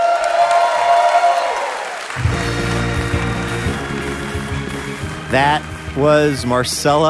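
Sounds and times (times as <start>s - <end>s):
live theater audience applauding and cheering after a comedy set: 0.0s - 7.0s
low music: 2.2s - 7.0s
speech: 5.3s - 7.0s.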